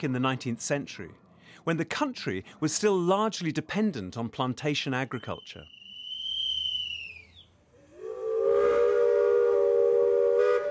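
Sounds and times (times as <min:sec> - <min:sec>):
speech: 0:00.0 - 0:05.8
steam train whistle at a museum: 0:07.8 - 0:10.7.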